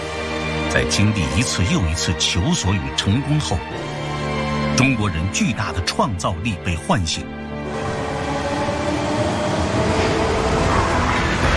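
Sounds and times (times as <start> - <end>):
speech: 0.7 - 4.0, 4.8 - 8.0
high-speed electric multiple-unit train running past: 6.6 - 11.5.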